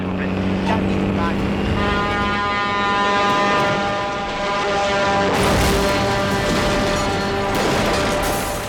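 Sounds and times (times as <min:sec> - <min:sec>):
truck horn blaring: 0:00.4 - 0:08.6
truck crashing into a phone booth: 0:03.2 - 0:08.6
debris smashing and clattering: 0:05.4 - 0:08.6.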